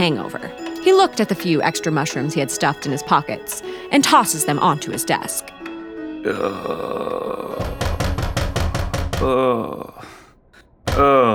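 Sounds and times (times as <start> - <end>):
speech: 0.0 - 7.8, 9.2 - 10.1, 11.0 - 11.3
man groaning and grunting: 6.2 - 8.1, 9.2 - 10.3, 10.9 - 11.3
heavy knocks pounding on a door: 7.6 - 9.4.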